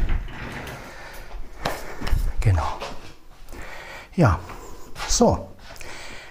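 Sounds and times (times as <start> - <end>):
chair scraping across the floor as it is pulled up to a desk: 0.0 - 2.3
speech: 4.2 - 4.5, 5.1 - 5.5.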